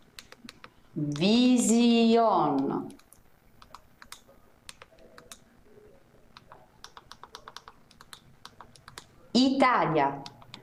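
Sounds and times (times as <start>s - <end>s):
typing on a computer keyboard: 0.2s - 0.8s, 2.6s - 5.4s, 6.4s - 9.1s, 10.2s - 10.6s
speech: 1.0s - 3.0s, 9.4s - 10.3s.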